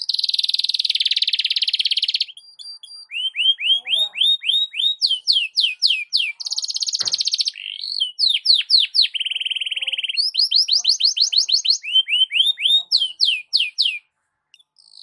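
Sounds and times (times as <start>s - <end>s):
Belgian canary morning song: 0.0s - 15.0s.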